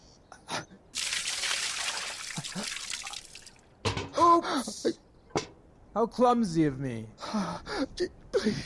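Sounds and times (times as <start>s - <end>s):
water pouring onto the ground: 1.0s - 3.7s
speech: 4.4s - 5.0s, 6.0s - 8.6s.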